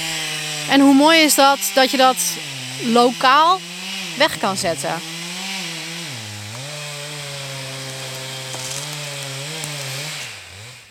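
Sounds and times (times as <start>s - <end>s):
chainsaw cutting through wood: 0.0s - 10.8s
speech: 0.7s - 5.1s.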